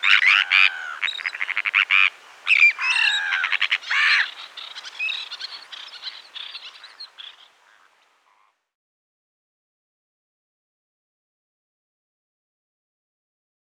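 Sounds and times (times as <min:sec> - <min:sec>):
Sandwich tern calls: 0:00.0 - 0:08.5.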